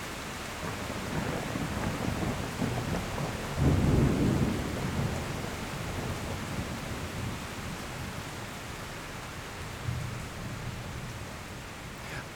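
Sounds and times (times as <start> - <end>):
steady rain: 0.0 - 12.3
low thunder rumbling: 1.2 - 6.4.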